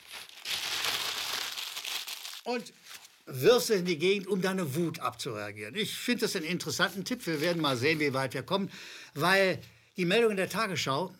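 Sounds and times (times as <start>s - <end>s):
sheet of paper being crumpled: 0.0s - 3.2s, 7.2s - 8.2s
speech: 2.4s - 11.1s.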